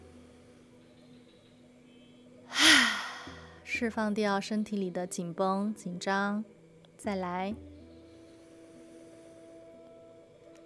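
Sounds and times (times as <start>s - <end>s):
deep breath during a guided relaxation exercise: 2.5s - 3.6s
speech: 3.8s - 7.7s.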